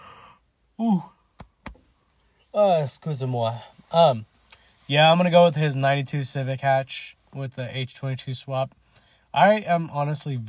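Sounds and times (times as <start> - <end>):
person yawning: 0.0 - 1.2
speech: 2.6 - 4.3, 4.9 - 10.4.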